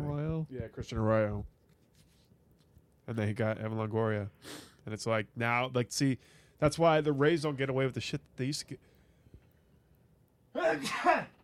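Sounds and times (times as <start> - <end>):
speech: 0.7 - 1.6, 3.1 - 8.9, 10.7 - 11.3
person sneezing loudly: 10.6 - 11.4.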